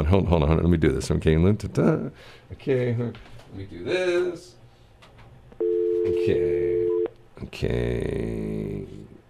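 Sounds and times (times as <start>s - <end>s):
speech: 0.0s - 4.6s, 5.6s - 6.8s, 7.4s - 9.1s
telephone dial tone while placing a call: 5.6s - 6.2s.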